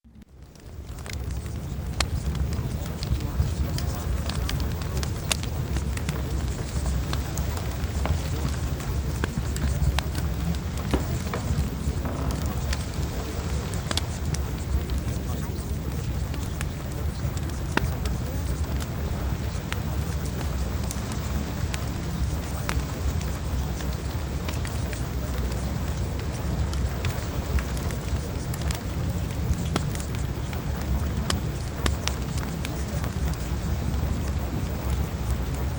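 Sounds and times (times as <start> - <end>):
fireplace fire crackling: 0.2 - 35.7.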